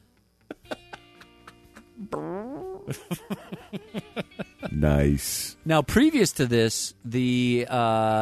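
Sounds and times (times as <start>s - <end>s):
laughter: 0.5s - 2.0s, 2.9s - 5.0s
cartoonish fart sound effect with sliding pitch: 2.0s - 3.0s
speech: 2.0s - 4.2s, 4.8s - 8.2s.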